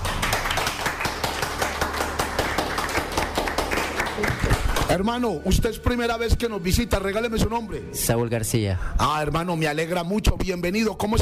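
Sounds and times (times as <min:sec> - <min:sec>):
audience applauding in a temple: 0:00.0 - 0:05.2
speech: 0:05.0 - 0:11.1.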